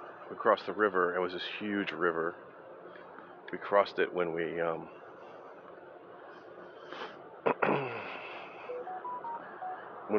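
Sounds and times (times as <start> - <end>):
speech: 0.3 - 2.5, 3.5 - 5.0
sniff: 6.8 - 7.2
mobile phone beeping: 8.7 - 9.9.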